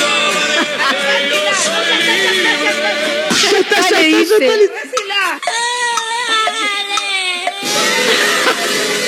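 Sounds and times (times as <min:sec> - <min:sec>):
laughter: 0:00.4 - 0:05.4, 0:07.8 - 0:09.0
speech: 0:04.2 - 0:04.9
young child crying: 0:05.2 - 0:08.4.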